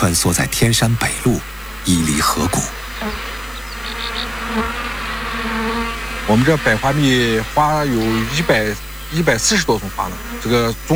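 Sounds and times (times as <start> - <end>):
speech: 0.0 - 3.3, 6.3 - 10.9
swarm of black honeybees buzzing: 0.0 - 10.9
faint chirps: 2.7 - 9.8.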